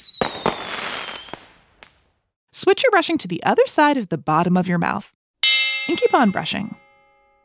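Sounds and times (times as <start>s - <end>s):
thin descending whistle: 0.0s - 1.6s
fireworks banging: 0.0s - 2.2s
speech: 2.6s - 5.2s, 5.9s - 6.8s.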